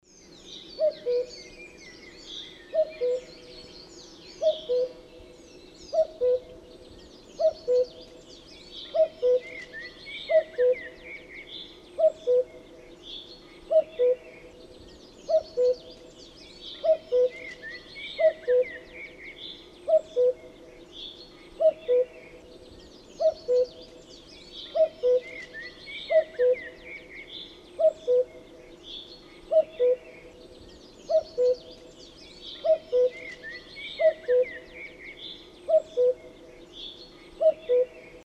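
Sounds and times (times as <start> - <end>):
cuckoo calling: 0.8 - 1.6, 2.7 - 3.7, 4.4 - 5.1, 5.9 - 6.7, 7.4 - 8.2, 8.8 - 11.4, 12.0 - 12.7, 13.7 - 14.6, 15.2 - 20.6, 21.6 - 22.6, 23.2 - 24.0, 24.6 - 28.8, 29.4 - 36.6, 37.4 - 38.2.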